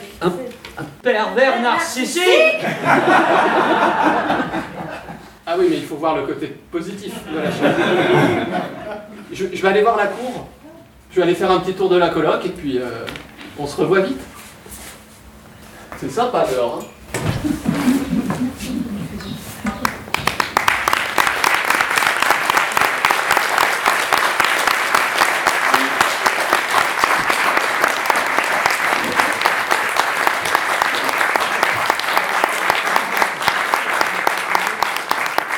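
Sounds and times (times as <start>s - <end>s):
speech: 0.2s - 4.7s, 5.5s - 14.3s, 16.0s - 18.0s
laughter: 2.4s - 5.4s, 7.2s - 9.3s, 17.4s - 19.1s
sizable audience applauding: 19.7s - 35.5s.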